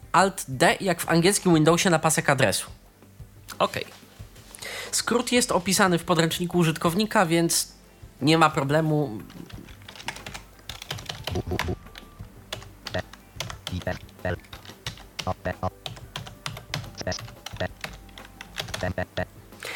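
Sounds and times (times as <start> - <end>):
speech: 0.2 - 2.8, 3.6 - 4.0, 4.9 - 9.7, 13.7 - 14.5, 15.2 - 15.8, 17.0 - 17.4, 18.8 - 19.3
rapid typing on a computer keyboard: 9.3 - 11.8, 12.5 - 19.0.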